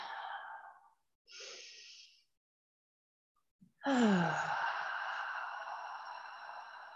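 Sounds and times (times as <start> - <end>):
person drawing a deep breath in and out: 0.0 - 2.2, 3.9 - 6.9.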